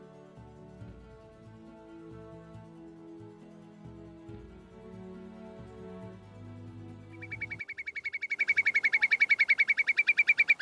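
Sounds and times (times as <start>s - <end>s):
bird singing repeated bright chirps: 7.1s - 10.6s.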